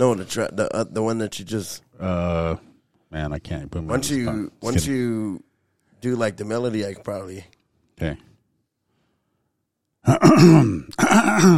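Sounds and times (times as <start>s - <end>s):
speech: 0.0s - 8.3s, 10.0s - 11.5s
man clearing his throat to bring up phlegm: 10.0s - 11.5s.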